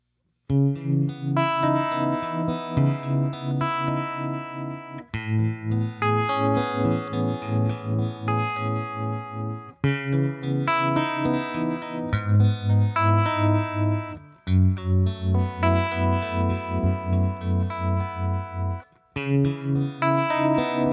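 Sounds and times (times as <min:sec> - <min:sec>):
Stratocaster electric guitar through 6V6 Princeton amplifier with harmonic tremolo: 0:00.5 - 0:20.9.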